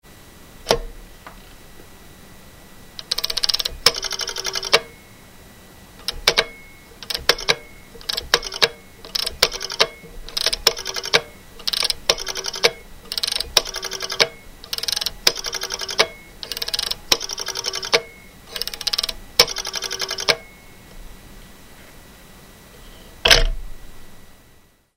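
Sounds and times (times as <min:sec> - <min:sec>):
turquoise telephone: 0:03.0 - 0:05.0, 0:06.0 - 0:20.7.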